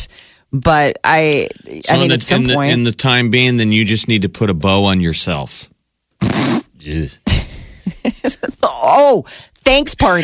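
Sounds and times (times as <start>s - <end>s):
speech: 0.0s - 8.2s, 8.8s - 10.2s
loud belch with low rumbling voiced stretch: 6.2s - 7.2s.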